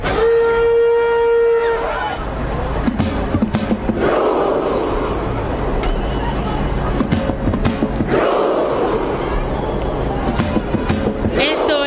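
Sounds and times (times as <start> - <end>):
sustained low horn-like note: 0.0 - 1.9
massed crowd voices shouting together in a chant: 0.0 - 2.4, 3.7 - 7.0, 7.7 - 11.8
large football crowd roar: 0.0 - 11.8.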